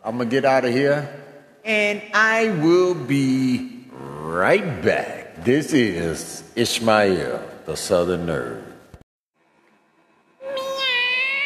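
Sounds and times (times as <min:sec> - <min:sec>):
speech: 0:00.1 - 0:08.7
cat meowing: 0:10.6 - 0:11.4.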